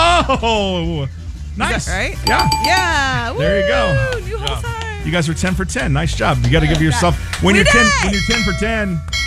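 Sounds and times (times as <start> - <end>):
speech: 0.2 - 9.2
farm bell ringing: 2.3 - 3.3.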